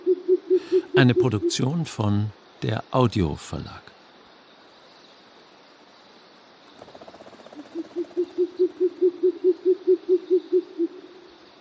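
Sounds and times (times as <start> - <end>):
owl hooting in a rolling trill: 0.0 - 1.7, 6.7 - 11.3
speech: 1.0 - 4.0.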